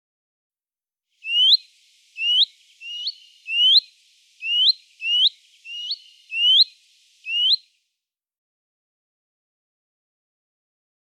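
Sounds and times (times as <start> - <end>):
willow warbler rising hoo-eet calls: 1.2 - 7.7.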